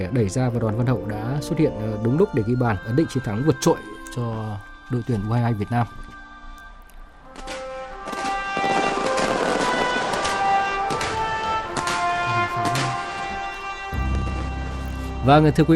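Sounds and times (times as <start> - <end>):
speech: 0.0 - 6.0, 15.2 - 15.7
fireworks crackling and popping over a stadium in the Philippines: 7.3 - 15.0.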